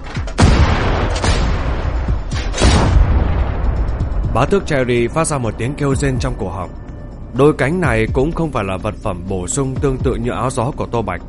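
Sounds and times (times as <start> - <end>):
shotgun blasts in a horror audio story: 0.4 - 3.5
speech: 4.4 - 11.2.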